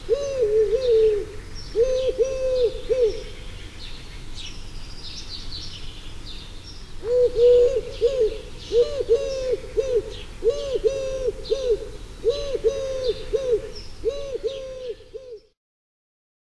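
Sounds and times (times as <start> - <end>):
Eurasian collared dove cooing: 0.0 - 3.5, 7.0 - 15.6
small birds chirping: 0.0 - 15.5.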